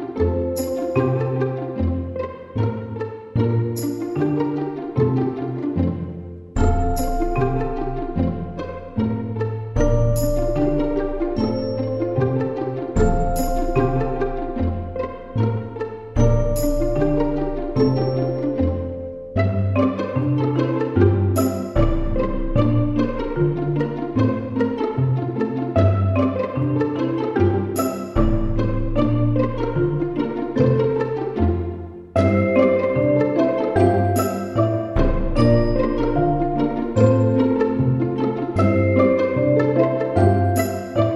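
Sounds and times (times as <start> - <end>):
quirky string picking: 0.1 - 41.1.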